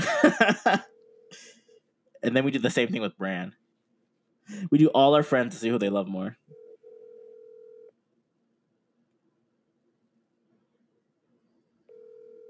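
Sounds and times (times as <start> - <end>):
laughter: 0.0 - 0.8
speech: 2.2 - 3.6, 4.5 - 6.6
phone's ringback tone: 6.5 - 7.9, 11.9 - 12.4.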